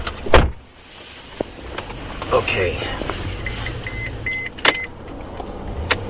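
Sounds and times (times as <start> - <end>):
road and engine rumble inside a moving self-driving Mercedes-Benz sedan: 0.0 - 6.0
speech: 2.3 - 3.1
short electronic beeps: 3.4 - 4.9.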